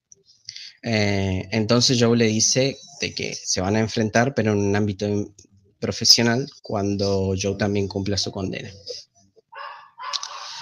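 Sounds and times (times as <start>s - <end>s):
speech: 0.2s - 9.1s
dog barking excitedly at someone arriving: 9.5s - 10.6s.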